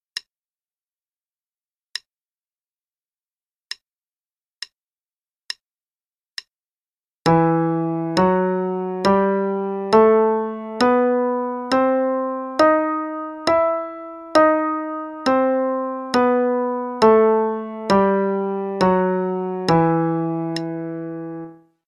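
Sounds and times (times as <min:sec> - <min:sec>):
E harmonic minor scale: 0:07.3 - 0:21.7.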